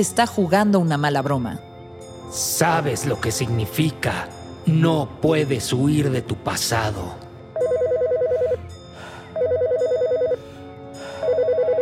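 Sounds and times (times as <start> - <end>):
speech: 0.0 - 1.7, 2.3 - 7.7
telephone ringing in loud warbling bursts: 7.6 - 8.6, 9.4 - 10.4, 11.2 - 11.7.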